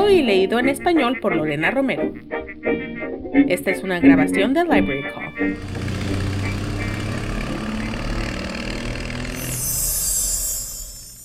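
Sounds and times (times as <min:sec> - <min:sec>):
speech: 0:00.3 - 0:05.9
Harley-Davidson motorcycle engine idling: 0:05.6 - 0:10.0.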